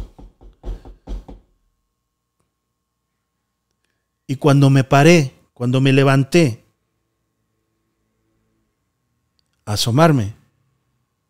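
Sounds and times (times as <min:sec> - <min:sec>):
knocking on a door: 0:00.0 - 0:01.6
speech: 0:04.3 - 0:06.6, 0:09.7 - 0:10.4.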